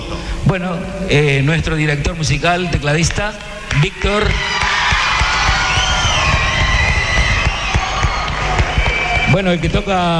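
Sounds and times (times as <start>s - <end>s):
speech: 0.5s - 4.6s, 9.3s - 10.1s
large crowd cheering and applauding loudly: 3.4s - 9.9s
whoops and shouts: 4.2s - 9.4s.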